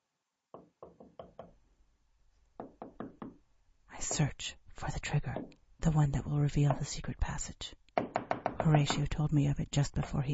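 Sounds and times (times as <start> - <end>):
knocking on a solid door: 0.6 - 1.6, 2.6 - 3.4, 8.0 - 9.0
speech: 4.2 - 7.8, 8.6 - 10.3.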